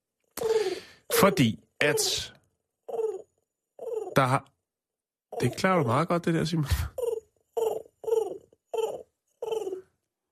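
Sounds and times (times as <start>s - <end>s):
speech: 1.2s - 2.4s, 4.2s - 4.5s, 5.4s - 7.0s
person imitating pigeon cooing: 2.9s - 4.3s, 6.7s - 9.9s.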